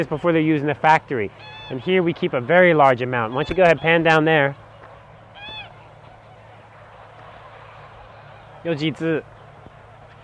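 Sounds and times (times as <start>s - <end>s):
goose honk: 0.0s - 4.4s, 5.3s - 8.8s
speech: 0.0s - 4.6s, 8.6s - 9.3s.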